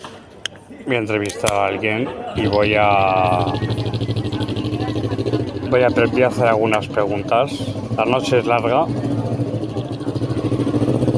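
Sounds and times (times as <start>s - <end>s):
speech: 0.7s - 4.0s, 5.7s - 9.2s
motorcycle engine pulling away: 2.4s - 11.1s.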